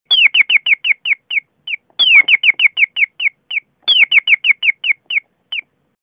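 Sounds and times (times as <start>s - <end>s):
nightingale singing: 0.1s - 5.8s.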